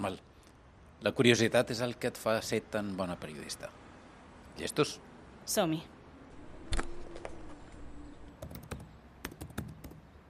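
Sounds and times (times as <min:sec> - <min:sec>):
speech: 0:00.0 - 0:00.3, 0:01.0 - 0:03.8, 0:04.6 - 0:06.0
typing commands on a computer keyboard: 0:08.3 - 0:10.1.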